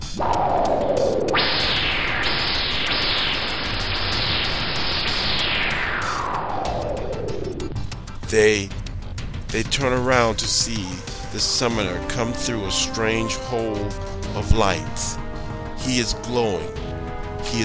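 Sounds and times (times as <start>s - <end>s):
loud sustained whooshing roar: 0.0s - 7.6s
speech: 8.4s - 8.8s, 9.5s - 15.2s, 15.9s - 16.8s, 17.4s - 17.6s.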